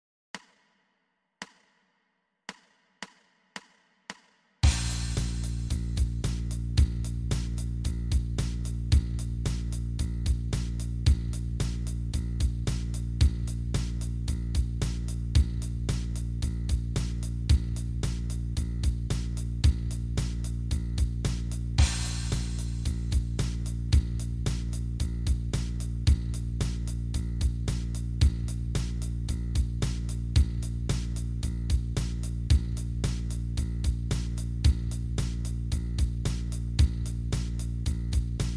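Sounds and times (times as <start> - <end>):
bass startup: 4.6 - 38.5.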